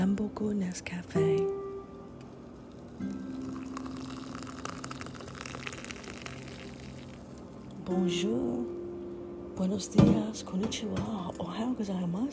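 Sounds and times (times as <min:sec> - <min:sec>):
low hum: 0:00.0 - 0:12.3
speech: 0:00.1 - 0:01.6, 0:03.0 - 0:03.6, 0:07.9 - 0:08.8, 0:09.6 - 0:12.3
hot water poured from a small red teapot into a cup: 0:02.6 - 0:07.7.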